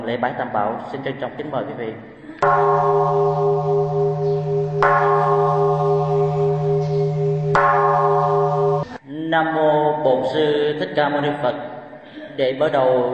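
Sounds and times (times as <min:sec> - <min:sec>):
speech: 0:00.0 - 0:05.7, 0:09.3 - 0:11.7, 0:12.4 - 0:13.1
ceremonial temple bell ringing with overtones: 0:02.4 - 0:09.0.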